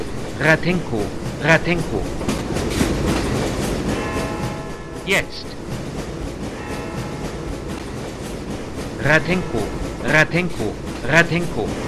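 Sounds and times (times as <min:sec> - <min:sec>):
train rolling through a mountain tunnel: 0:00.0 - 0:11.8
speech: 0:00.4 - 0:03.2, 0:05.1 - 0:05.7, 0:09.0 - 0:11.8.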